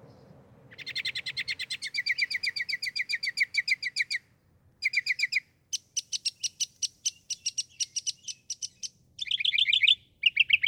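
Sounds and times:
northern mockingbird singing: 0.7 - 4.2, 4.8 - 10.6.

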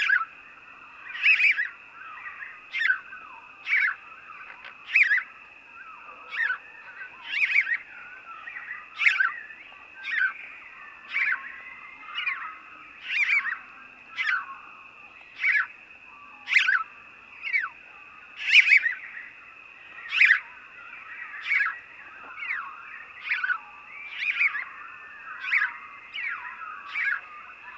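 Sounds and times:
house sparrow chirping: 0.0 - 0.3, 1.0 - 17.8, 18.4 - 27.7.

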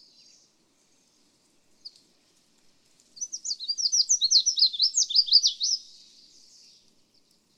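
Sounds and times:
Red-faced Warbler singing a rapid series of high slurred notes: 3.2 - 6.8.

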